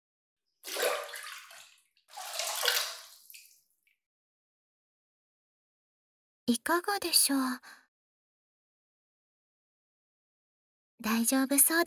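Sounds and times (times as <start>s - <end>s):
feet dipped into a basin of hot water: 0.7s - 3.6s
speech: 6.5s - 7.8s, 11.0s - 11.8s.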